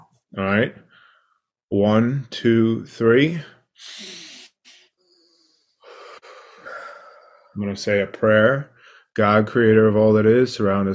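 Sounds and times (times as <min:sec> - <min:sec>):
speech: 0:00.3 - 0:00.9, 0:01.7 - 0:04.2, 0:07.6 - 0:10.9
deep breath taken slowly: 0:00.8 - 0:01.6, 0:03.6 - 0:07.6, 0:08.7 - 0:09.2.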